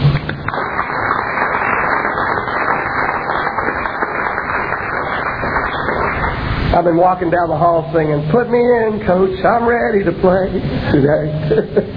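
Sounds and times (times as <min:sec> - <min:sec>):
crowd applauding: 0:00.0 - 0:06.7
speech: 0:06.8 - 0:11.9
laughter: 0:10.6 - 0:11.9.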